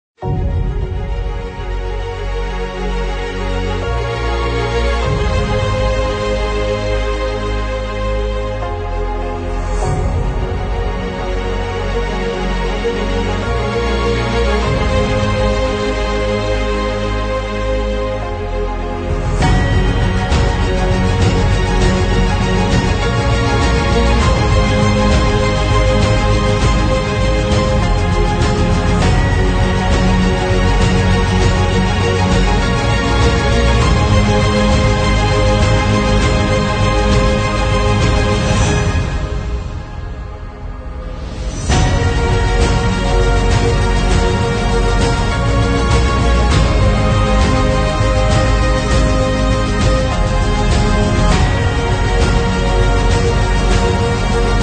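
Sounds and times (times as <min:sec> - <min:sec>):
inspiring uplifting epic motivational cinematic trailer music: 0:00.2 - 0:54.6.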